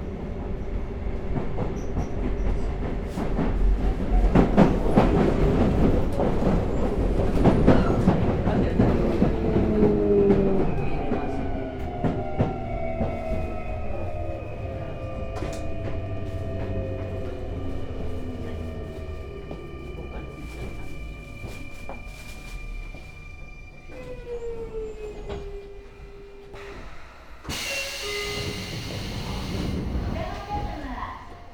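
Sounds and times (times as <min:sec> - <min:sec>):
commuter train rumbling on rails: 0:00.0 - 0:31.5
commuter train motor whine: 0:25.2 - 0:31.4.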